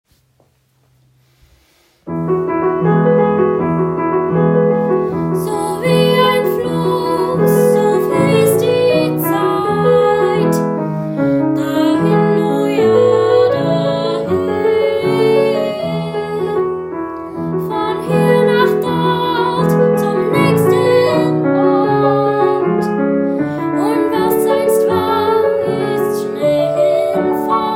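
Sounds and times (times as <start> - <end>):
piano: 0.2 - 27.7
person singing: 5.3 - 10.7, 11.5 - 16.8, 17.5 - 23.0, 23.6 - 27.7.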